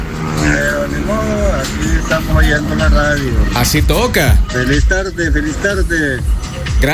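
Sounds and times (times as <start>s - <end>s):
heavy road traffic with engine drone: 0.0s - 6.9s
speech: 1.6s - 6.9s.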